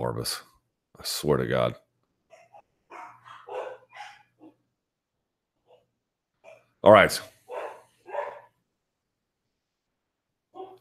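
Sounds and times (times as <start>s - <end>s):
speech: 0.0s - 1.8s, 6.8s - 7.3s
dogs barking: 2.3s - 4.6s, 5.7s - 6.7s, 7.4s - 8.6s.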